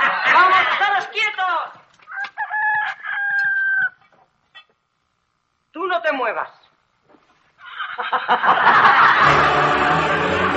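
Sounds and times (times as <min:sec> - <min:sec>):
laughter: 0:00.0 - 0:01.0, 0:07.6 - 0:10.3
rooster crowing: 0:02.0 - 0:04.1
speech: 0:06.1 - 0:06.6, 0:08.1 - 0:09.8.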